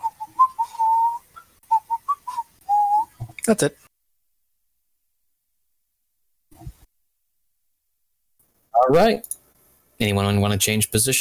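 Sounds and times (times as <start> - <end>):
man idly whistling a tune to himself: 0.0 - 3.2
speech: 3.5 - 3.8, 8.9 - 9.4, 10.0 - 11.2.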